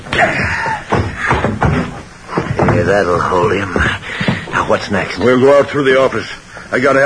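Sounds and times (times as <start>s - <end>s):
dull heavy blows with a gun barrel: 0.0s - 5.6s
shuffling: 0.0s - 5.8s
speech: 0.2s - 0.7s, 2.8s - 4.0s, 4.7s - 7.0s
breathing: 3.9s - 4.6s, 6.4s - 6.7s.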